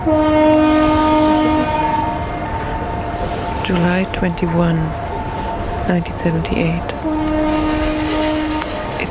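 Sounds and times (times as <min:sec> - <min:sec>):
speech: 0:00.0 - 0:00.4, 0:03.7 - 0:05.0, 0:05.9 - 0:07.2
foghorn blaring low tones at a harbour point: 0:00.0 - 0:09.0.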